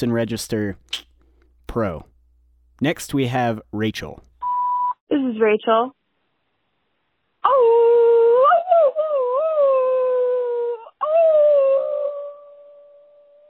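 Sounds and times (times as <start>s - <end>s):
speech: 0.0s - 1.1s, 1.7s - 2.1s, 2.8s - 4.3s, 5.1s - 6.0s
person imitating a coyote howl over a tinny phone line: 7.5s - 12.8s.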